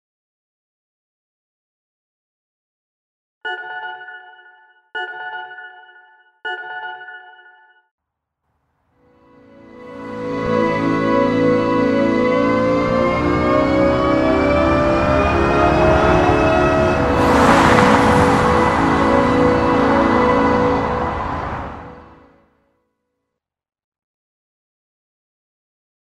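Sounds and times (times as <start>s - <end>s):
vehicle accelerating forward: 9.1s - 22.3s.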